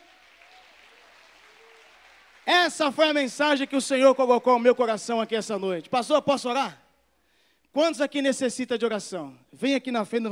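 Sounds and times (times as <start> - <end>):
congregation applauding: 0.0 - 3.6
speech: 2.5 - 6.8, 7.7 - 10.2.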